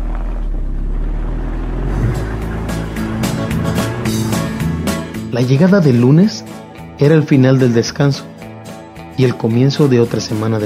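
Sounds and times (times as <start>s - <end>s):
road and wind noise: 0.0s - 6.8s
car engine rumbling while driving through streets: 0.0s - 7.0s
speech: 5.4s - 8.3s, 9.2s - 10.6s.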